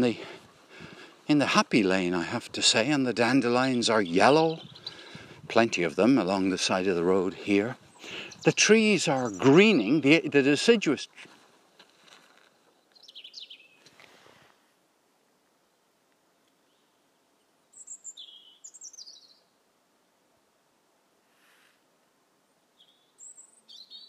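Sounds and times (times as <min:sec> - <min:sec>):
speech: 0:00.0 - 0:00.3, 0:01.3 - 0:04.8, 0:05.5 - 0:11.3
songbirds singing, possibly robins: 0:00.0 - 0:11.5, 0:12.6 - 0:14.0, 0:15.6 - 0:19.6, 0:22.6 - 0:24.0
hiss: 0:00.0 - 0:24.0.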